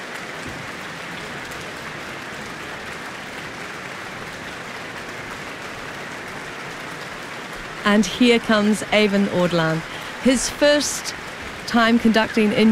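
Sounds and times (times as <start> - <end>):
large audience applauding an orchestra at an evening concert in New Zealand: 0.0 - 12.7
speech: 7.9 - 12.7.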